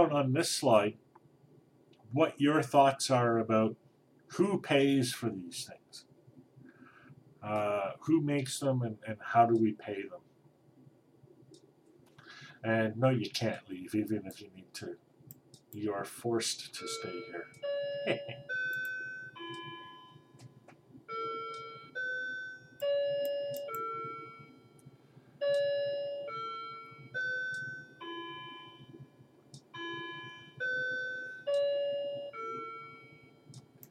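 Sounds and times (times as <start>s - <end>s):
speech: 0.0s - 1.0s, 2.1s - 6.1s, 7.4s - 10.2s, 12.6s - 15.0s, 15.7s - 18.6s
clock chiming a slow melodic tune of bell notes: 16.9s - 20.4s, 21.1s - 24.5s, 25.4s - 29.0s, 29.8s - 33.4s.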